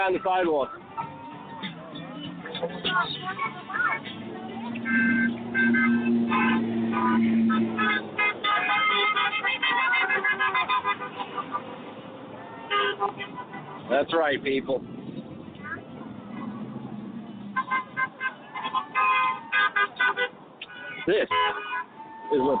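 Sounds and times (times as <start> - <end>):
speech: 0.0 - 0.9, 2.6 - 12.0, 12.7 - 14.9, 21.0 - 21.7, 22.3 - 22.5
outdoor street noise: 0.0 - 22.5
candy truck playing its tooting horn-like tune: 2.5 - 11.8, 12.4 - 14.3, 17.3 - 22.5.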